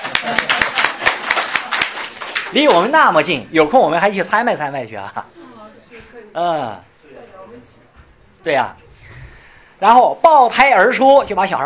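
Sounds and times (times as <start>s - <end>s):
audience applause with sharp even claps: 0.0s - 2.8s
speech: 2.5s - 6.9s, 8.4s - 8.8s, 9.8s - 11.6s.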